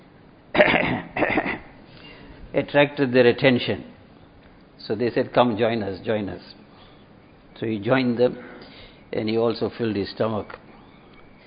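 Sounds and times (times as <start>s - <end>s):
man coughing: 0.5s - 1.8s
speech: 2.5s - 4.0s, 4.8s - 6.6s, 7.6s - 10.6s.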